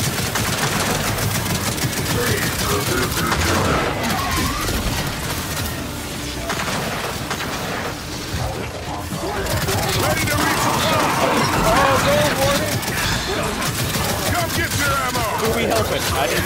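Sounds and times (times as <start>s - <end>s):
automatic gunfire bursts in a video game battle: 0.0s - 8.0s, 9.2s - 16.4s
mechanical clatter in a video game battle: 0.0s - 16.4s.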